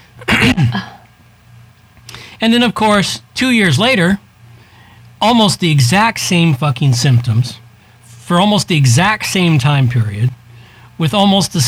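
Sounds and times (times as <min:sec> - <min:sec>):
speech: 0:00.2 - 0:01.0, 0:02.4 - 0:04.2, 0:05.2 - 0:07.6, 0:08.3 - 0:10.4, 0:11.0 - 0:11.6
harsh nagging cough: 0:00.2 - 0:01.1.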